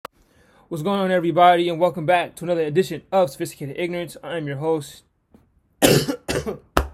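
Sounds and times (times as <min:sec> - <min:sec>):
speech: 0:00.7 - 0:05.1, 0:05.8 - 0:06.7
loud harsh coughs: 0:05.8 - 0:06.8.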